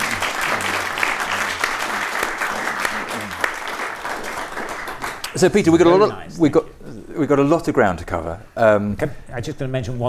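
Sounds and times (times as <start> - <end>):
faint low voice-like murmurs: 0.0 - 3.8
audience applause: 0.0 - 5.6
speech: 5.4 - 10.0.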